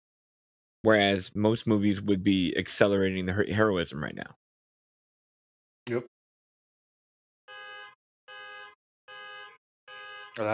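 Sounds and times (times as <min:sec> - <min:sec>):
speech: 0:00.8 - 0:04.4, 0:05.9 - 0:06.1, 0:10.4 - 0:10.5
car alarm blaring: 0:07.5 - 0:10.5.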